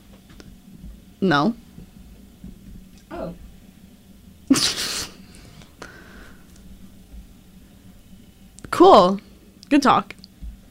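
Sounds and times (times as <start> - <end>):
speech: 1.2 - 1.6, 8.8 - 10.2
person sneezing: 4.5 - 5.2.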